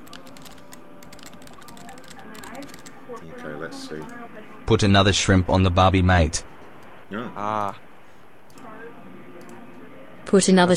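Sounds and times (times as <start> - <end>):
fast typing on a computer keyboard: 0.0 - 3.5
speech: 3.1 - 6.5, 7.1 - 7.8, 10.3 - 10.7.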